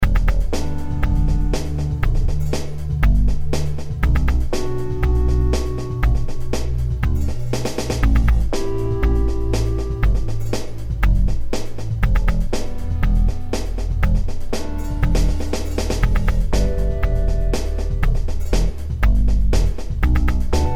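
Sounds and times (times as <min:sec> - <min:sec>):
linear funk groove in E minor at 120 bpm: 0:00.0 - 0:20.7.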